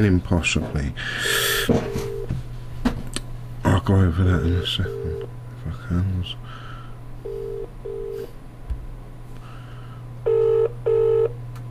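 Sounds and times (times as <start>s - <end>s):
speech: 0.0s - 2.1s, 3.8s - 5.2s, 5.9s - 6.6s
steady low electrical hum: 0.0s - 11.6s
telephone line double-tone ringing on an outgoing call: 1.9s - 2.4s, 4.5s - 5.3s, 7.2s - 8.2s, 10.2s - 11.4s.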